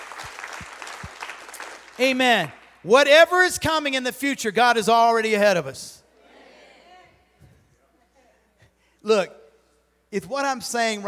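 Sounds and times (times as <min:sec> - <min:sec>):
crowd applauding: 0:00.0 - 0:02.6
speech: 0:02.0 - 0:06.0, 0:09.0 - 0:09.4, 0:10.1 - 0:11.0.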